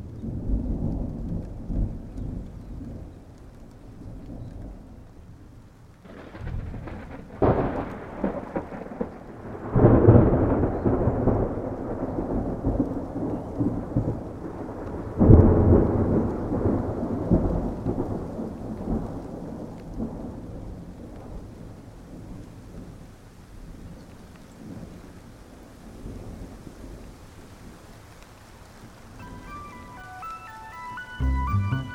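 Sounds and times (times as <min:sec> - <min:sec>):
steady rain: 0:00.0 - 0:31.9
summer thunderstorm thunder rumbling: 0:06.0 - 0:19.0
ringing tones: 0:29.2 - 0:31.9.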